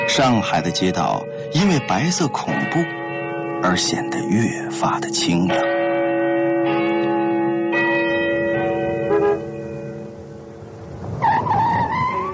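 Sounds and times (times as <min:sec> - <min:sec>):
large tower bell tolling: 0:00.0 - 0:11.0
speech: 0:00.2 - 0:03.0, 0:03.6 - 0:05.8
car tires squealing: 0:11.2 - 0:12.3.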